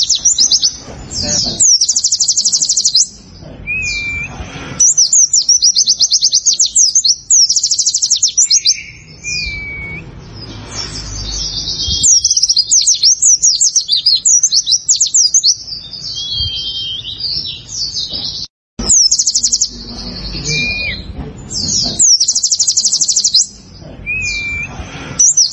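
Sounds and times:
prinia song of quick high repeated notes forming buzzy trills: 0.0 - 25.5.

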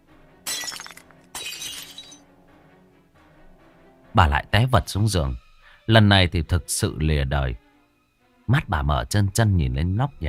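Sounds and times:
glass of an oil lamp shattering as it is smashed against a head: 0.5 - 2.2
speech: 4.2 - 7.6, 8.5 - 10.2.

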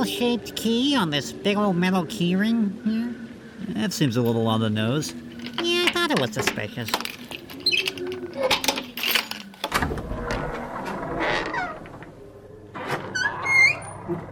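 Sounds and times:
speech: 0.0 - 3.1, 3.7 - 7.2
door opening on creaky hinges: 5.3 - 14.3.

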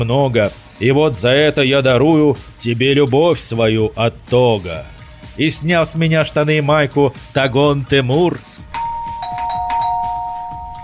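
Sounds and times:
speech: 0.0 - 8.6
low rhythmic background: 0.0 - 10.8
front doorbell ringing insistently with electronic tones: 8.8 - 10.8.

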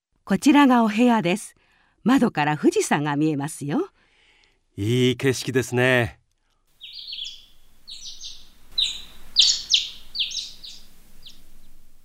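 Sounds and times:
speech: 0.3 - 4.0, 4.8 - 6.2
birds singing outside a guest room window: 6.8 - 12.0.

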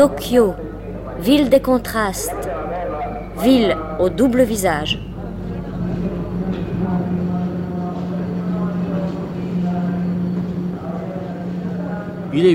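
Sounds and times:
speech: 0.0 - 2.5, 3.4 - 5.1, 12.4 - 12.5
steady low hum: 0.0 - 12.5
trains rumbling at busy Shinjuku railway station in Tokyo: 3.4 - 12.5.

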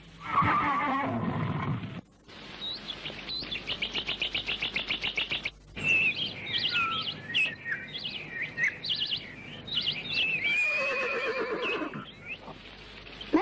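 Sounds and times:
horse whinnying: 0.2 - 1.8, 10.5 - 12.1
high chirping bird-like calls: 2.6 - 13.3.

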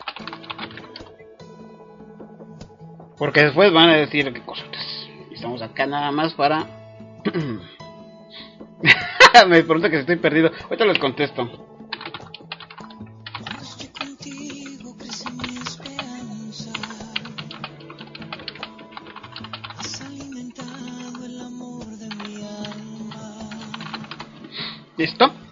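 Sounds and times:
typing on a computer keyboard: 0.0 - 1.1, 11.9 - 24.3
speech: 3.2 - 4.7, 5.4 - 7.7, 9.3 - 11.7.

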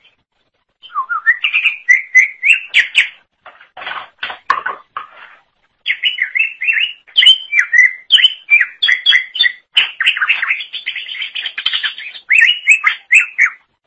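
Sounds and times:
Greater Green Leafbird song of whistled and buzzy notes: 0.8 - 3.3, 5.8 - 13.8.

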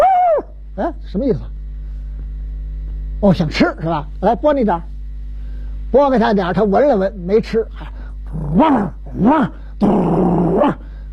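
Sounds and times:
speech: 0.8 - 1.5, 3.2 - 4.9, 5.9 - 10.8
human voice imitating a growling dog: 7.8 - 10.9.

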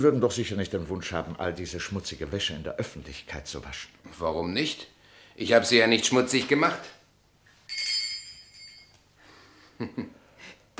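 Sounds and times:
speech: 0.0 - 7.0, 9.8 - 10.2
small bell rung to summon a servant: 7.7 - 9.0.

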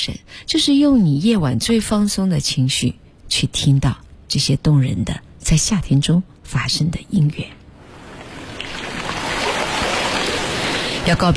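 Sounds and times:
speech: 0.0 - 7.6, 11.1 - 11.3
ocean waves on a sea shore: 7.8 - 11.3.

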